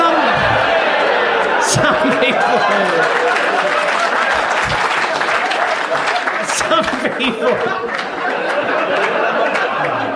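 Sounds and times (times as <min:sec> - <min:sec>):
audience applause: 0:00.0 - 0:10.1
audience chuckling: 0:00.0 - 0:10.1
audience crowd murmur: 0:00.0 - 0:10.1
speech: 0:01.8 - 0:03.3, 0:06.8 - 0:08.2.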